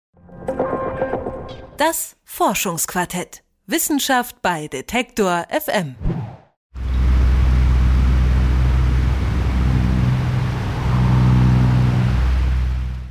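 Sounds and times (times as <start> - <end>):
speech: 1.8 - 6.3
electric fan whirring in a studio during hot weather: 6.8 - 13.0.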